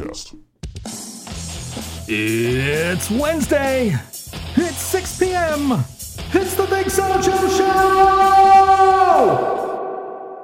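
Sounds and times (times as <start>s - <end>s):
speech: 0.2s - 0.5s, 2.1s - 9.6s
voice trailing off through a heavy echo effect: 2.1s - 3.6s, 6.4s - 10.4s.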